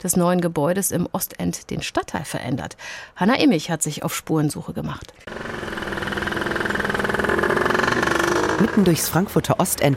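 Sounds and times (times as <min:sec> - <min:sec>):
speech: 0:00.0 - 0:05.7, 0:08.6 - 0:09.9
busy street traffic: 0:05.2 - 0:09.9
rumbling engine with a fast rhythmic throb: 0:05.3 - 0:09.6
trams passing: 0:05.3 - 0:09.8.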